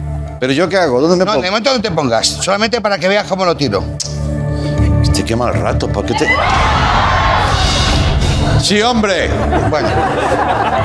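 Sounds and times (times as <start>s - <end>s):
speech: 0.4s - 4.2s, 5.2s - 7.1s, 8.6s - 10.8s
crowd of people shouting and yelling: 6.1s - 8.3s
laughter: 9.1s - 10.8s.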